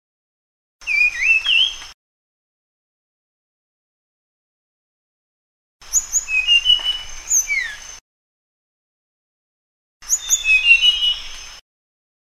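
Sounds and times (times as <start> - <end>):
Sunda blue flycatcher singing high slurred whistles: 0.8 - 1.9, 5.8 - 8.0, 10.0 - 11.6.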